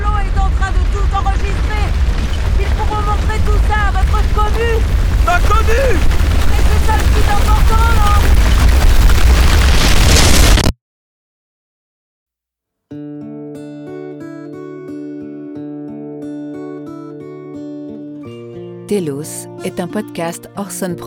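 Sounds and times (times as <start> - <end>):
massive roaring explosion blast wave: 0.0 - 10.7
speech: 18.9 - 21.0.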